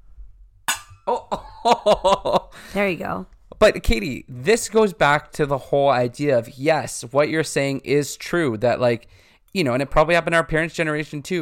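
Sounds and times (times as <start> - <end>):
drink glasses clinking together in a toast: 0.7 - 1.1
speech: 1.1 - 11.3.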